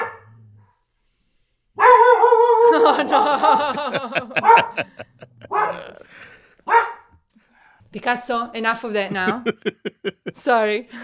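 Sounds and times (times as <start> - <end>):
dog barking and yelping: 0.0 - 0.3, 1.8 - 3.0, 4.3 - 6.0, 6.6 - 7.1
laughter: 2.7 - 6.5, 9.1 - 10.7
speech: 3.0 - 5.1, 7.9 - 11.0
person speaking soothingly: 4.8 - 6.2, 9.1 - 9.6.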